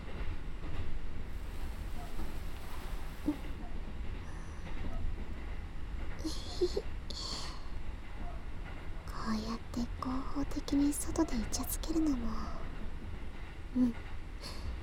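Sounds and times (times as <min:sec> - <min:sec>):
crowded train rumbling, heard from inside a carriage: 0:00.0 - 0:14.8
speech: 0:13.8 - 0:14.0.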